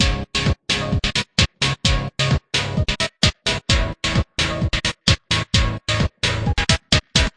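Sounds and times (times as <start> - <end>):
thin gated trance synth chords: 0.0 - 7.3.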